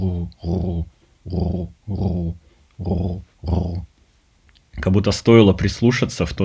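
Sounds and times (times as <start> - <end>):
pigeons cooing on the roof: 0.0 - 3.8
speech: 0.2 - 1.7, 5.0 - 6.4.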